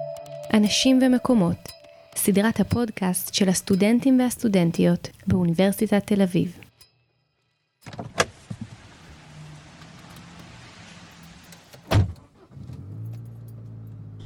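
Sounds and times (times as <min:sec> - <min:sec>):
speech: 0:00.5 - 0:06.6
car engine starting and idling: 0:08.2 - 0:14.2
car door opening with a sharp click: 0:11.4 - 0:13.7
car door thudding shut: 0:11.8 - 0:12.2.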